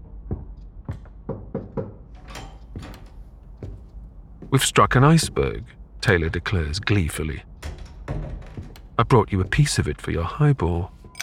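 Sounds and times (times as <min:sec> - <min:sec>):
knocking on the wooden door of a first-class cabin on a ship: 0:00.3 - 0:02.1
speech: 0:04.5 - 0:07.5, 0:09.0 - 0:11.0.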